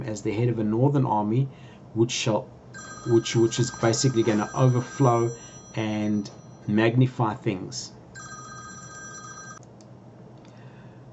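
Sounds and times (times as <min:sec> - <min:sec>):
speech: 0:00.0 - 0:08.0
low hum: 0:00.0 - 0:11.1
soft tone: 0:02.8 - 0:06.8
electronic phone ringtone for an incoming call: 0:02.8 - 0:06.9, 0:08.2 - 0:09.6.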